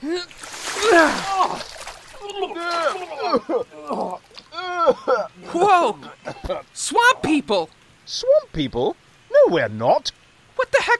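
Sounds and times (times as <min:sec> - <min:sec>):
loud excited voices: 0:00.0 - 0:06.2
bedpan of urine being emptied from above, splashing: 0:00.3 - 0:03.2
speech: 0:03.3 - 0:04.2, 0:05.7 - 0:10.9.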